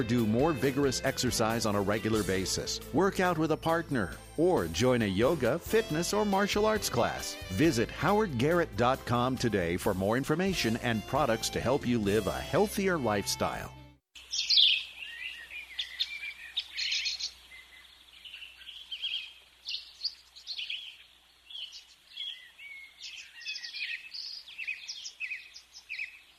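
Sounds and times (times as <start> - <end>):
birds chirping and trilling outdoors: 0.0 - 8.6, 14.2 - 26.3
speech: 0.0 - 13.8.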